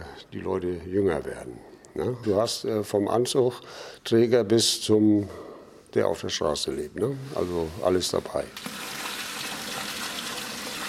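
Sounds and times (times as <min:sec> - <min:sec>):
speech: 0:00.2 - 0:09.0
water running onto food in a cooking pot: 0:08.6 - 0:10.8.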